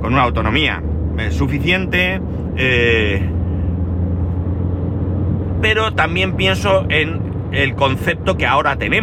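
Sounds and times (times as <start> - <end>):
family SUV driving interior road noise: 0.0 - 9.0
speech: 0.1 - 3.4, 5.6 - 9.0.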